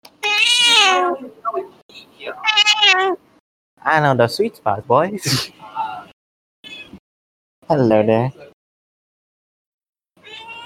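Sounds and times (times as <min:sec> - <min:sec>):
cat meowing: 0:00.2 - 0:01.2, 0:02.3 - 0:03.2, 0:10.2 - 0:10.6
speech: 0:01.1 - 0:03.2, 0:03.8 - 0:05.8, 0:07.7 - 0:08.5.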